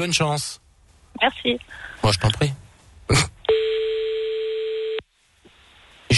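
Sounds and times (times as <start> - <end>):
speech: 0.0 - 0.6, 1.2 - 3.7
telephone ringback tone of a call to someone's home: 3.5 - 5.0.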